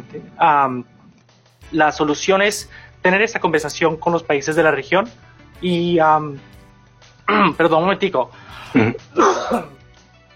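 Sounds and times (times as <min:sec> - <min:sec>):
speech: 0:00.1 - 0:01.0, 0:01.7 - 0:06.6, 0:07.3 - 0:09.8
single forceful human sneeze in Washington DC: 0:08.5 - 0:09.8.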